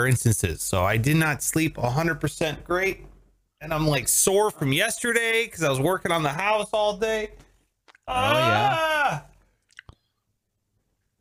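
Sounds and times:
speech: 0.0 - 7.4, 8.1 - 9.3
person yawning during a big stretch: 8.1 - 9.4
soft mouth clicks: 9.6 - 10.2.

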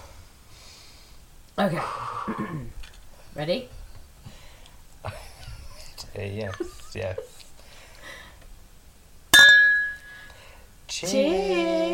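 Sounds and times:
speech: 1.6 - 2.8, 3.4 - 3.8, 6.2 - 7.4, 11.0 - 11.9
glasses clinking in a toast: 9.3 - 10.3.

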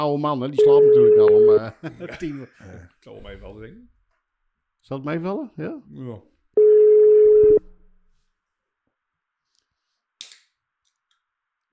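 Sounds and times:
speech: 0.0 - 4.0, 4.8 - 6.3
outgoing phone call ringing tone: 0.6 - 1.6, 6.6 - 7.6
laughter: 1.5 - 2.9.

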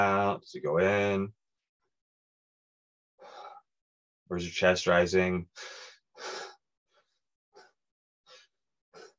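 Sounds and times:
speech: 0.0 - 1.4, 4.3 - 6.5
person demonstrating chest breathing: 3.2 - 3.7, 5.6 - 9.1.

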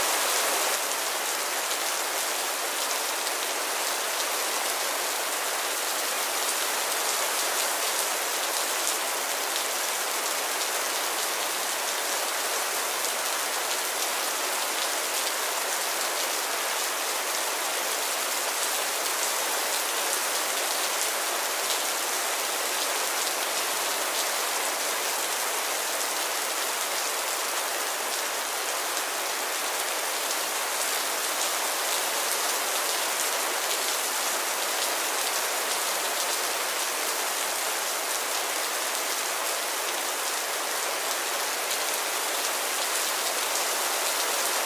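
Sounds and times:
steady spring rain: 0.0 - 44.6.

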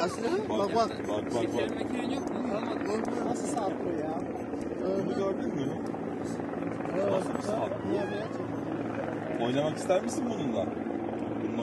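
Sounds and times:
speech: 0.0 - 8.6, 9.4 - 10.9
helicopter rotor and engine droning overhead: 0.0 - 11.6.

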